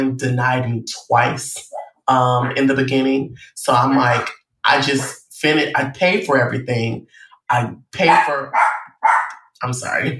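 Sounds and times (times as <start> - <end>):
speech: 0.0 - 8.8, 9.6 - 10.1
dogs barking: 8.0 - 9.5.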